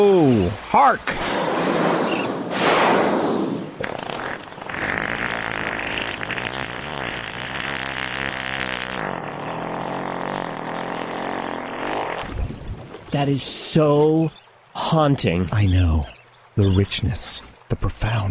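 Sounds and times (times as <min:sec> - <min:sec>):
speech: 0:00.0 - 0:02.4, 0:13.2 - 0:18.2
humpback whale fart: 0:01.1 - 0:12.7.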